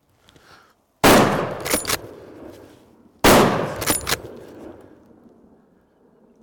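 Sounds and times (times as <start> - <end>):
Blaser R8 rifle close shots clipped: 1.0 - 2.6, 3.2 - 5.0.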